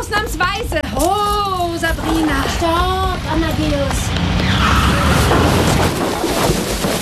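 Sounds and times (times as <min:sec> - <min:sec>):
speech: 0:00.1 - 0:04.3
car skidding and slamming into a hay wagon: 0:04.0 - 0:07.0.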